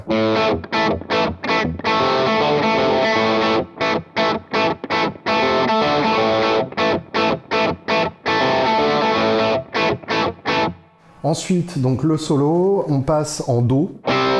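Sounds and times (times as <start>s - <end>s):
heavily distorted electric guitar chugging power chords on three strings: 0.0s - 11.1s, 14.0s - 14.3s
speech: 11.3s - 14.1s.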